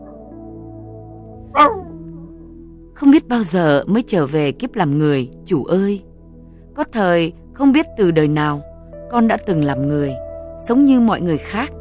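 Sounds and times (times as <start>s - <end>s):
dog barking: 1.6s - 2.0s
speech: 3.0s - 6.1s, 6.8s - 11.7s.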